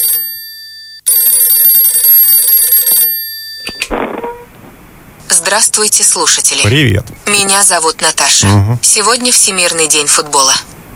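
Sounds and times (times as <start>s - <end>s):
old-style telephone bell ringing: 0.0s - 3.9s
speech: 5.4s - 10.7s.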